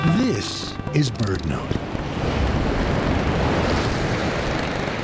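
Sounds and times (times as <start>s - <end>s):
storm surf pounding against rocks of a jetty: 0.2s - 5.0s
speech: 0.9s - 1.9s
gusting wind: 1.5s - 5.0s.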